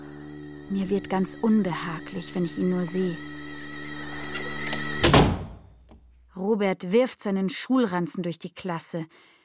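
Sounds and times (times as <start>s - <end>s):
steady hum: 0.0s - 5.0s
speech: 0.7s - 3.4s, 6.4s - 9.3s
door slamming shut: 5.0s - 5.7s.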